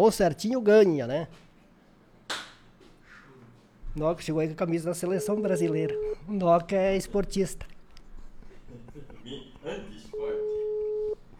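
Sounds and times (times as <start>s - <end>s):
speech: 0.0s - 1.4s, 4.0s - 7.7s, 8.7s - 10.4s
studio noise: 5.0s - 6.3s, 9.5s - 11.3s
telephone ringing on a call line: 5.2s - 6.2s, 10.1s - 11.2s.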